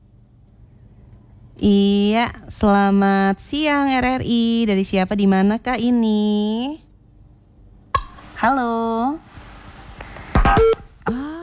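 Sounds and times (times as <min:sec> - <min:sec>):
speech: 0:01.6 - 0:06.8, 0:08.4 - 0:09.3
phone line clicks: 0:08.0 - 0:11.2
phone line crackling: 0:08.0 - 0:11.2
short steady beep: 0:10.3 - 0:10.9.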